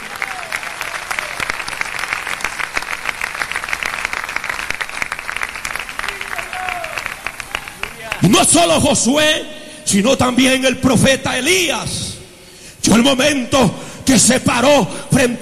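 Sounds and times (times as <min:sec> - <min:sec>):
applause from a large audience: 0:00.0 - 0:08.4
people cheering: 0:00.0 - 0:08.7
speech: 0:08.2 - 0:12.0, 0:13.0 - 0:15.3.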